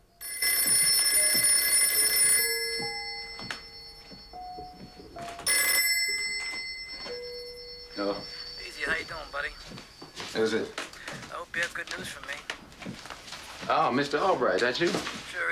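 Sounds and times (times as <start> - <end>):
telephone bell ringing in a bedroom: 0.0 - 12.0
soft knocks: 2.7 - 11.4
speech: 10.4 - 10.8, 11.6 - 13.0, 13.7 - 15.2.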